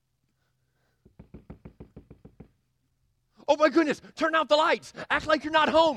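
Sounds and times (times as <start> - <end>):
firm knocking on a door: 1.0 - 2.6
speech: 3.5 - 5.9.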